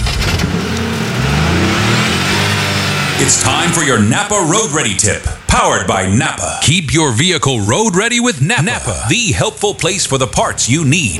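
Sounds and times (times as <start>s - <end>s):
car engine starting and revving: 0.0s - 11.1s
speech: 3.2s - 11.1s.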